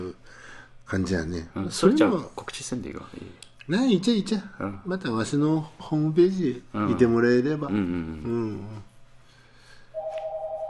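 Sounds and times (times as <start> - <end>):
low hum: 0.0 - 10.6
speech: 0.9 - 8.9
telephone ringing with electronic trill: 10.0 - 10.6.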